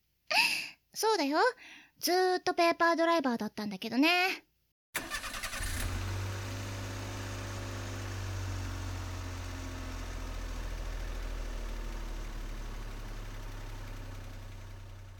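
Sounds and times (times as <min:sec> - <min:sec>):
speech: 0:01.0 - 0:04.5
car starter noise: 0:05.0 - 0:10.2
car engine idling as car pulls out: 0:05.0 - 0:15.1.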